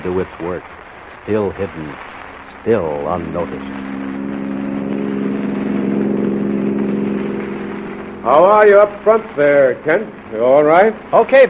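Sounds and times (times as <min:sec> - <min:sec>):
speech: 0:00.0 - 0:04.0, 0:08.2 - 0:11.4
car engine running on a mountain road: 0:03.3 - 0:11.4.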